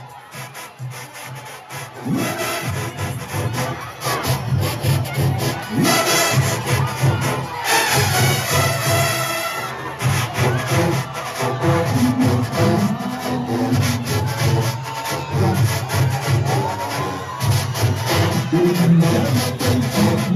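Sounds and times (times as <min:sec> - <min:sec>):
goatskin drum beating a driving rhythm: 0:00.0 - 0:20.3
loud festive crowd cheering: 0:00.0 - 0:20.3.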